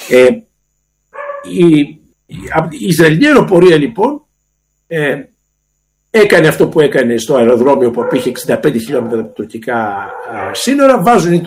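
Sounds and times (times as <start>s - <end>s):
speech: 0.1s - 0.5s, 1.4s - 4.2s, 4.9s - 5.3s, 6.1s - 11.4s
pet dogs barking: 1.2s - 1.6s, 7.7s - 11.1s.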